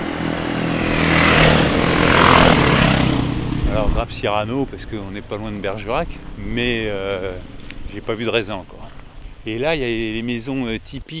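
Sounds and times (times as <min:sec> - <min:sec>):
enduro motorcycle engine passing by: 0:00.0 - 0:10.2
speech: 0:04.0 - 0:11.1.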